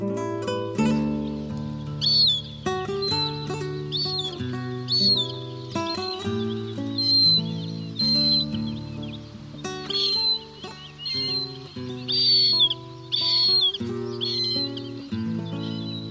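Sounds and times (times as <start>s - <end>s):
marsh harrier squealing calls: 0.7s - 16.0s.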